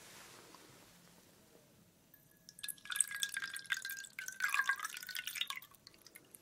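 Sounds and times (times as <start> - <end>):
large drink pouring into a glass: 2.4 - 6.3.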